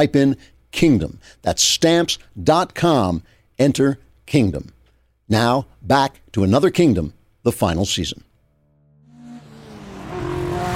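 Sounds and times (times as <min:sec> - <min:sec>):
speech: 0:00.0 - 0:08.3
Mercedes car engine speeding through the night: 0:08.9 - 0:10.7.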